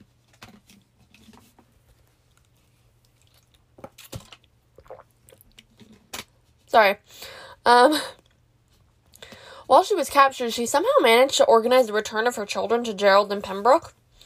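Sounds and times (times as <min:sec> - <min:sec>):
person sipping and swallowing water: 0:02.3 - 0:06.0
small wet mouth clicks: 0:04.8 - 0:05.6
speech: 0:06.8 - 0:08.2, 0:09.7 - 0:14.0.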